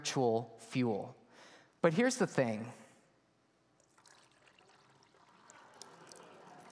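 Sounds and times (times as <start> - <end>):
speech: 0.0 - 1.2, 1.8 - 2.8
water pouring from a pitcher: 3.8 - 6.6.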